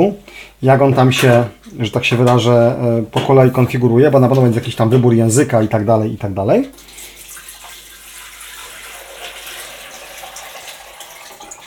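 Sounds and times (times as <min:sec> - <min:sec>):
speech: 0:00.0 - 0:06.9
water poured from a jug into a tank: 0:06.7 - 0:11.6.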